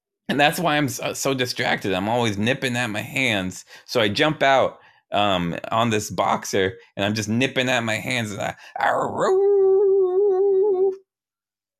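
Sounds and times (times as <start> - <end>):
speech: 0.3 - 9.5
person imitating a werewolf's howl: 8.9 - 11.0.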